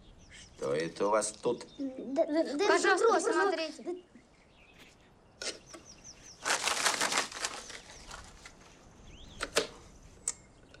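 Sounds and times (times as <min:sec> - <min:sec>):
speech: 0:00.6 - 0:04.2
bird flapping its wings: 0:06.4 - 0:08.6.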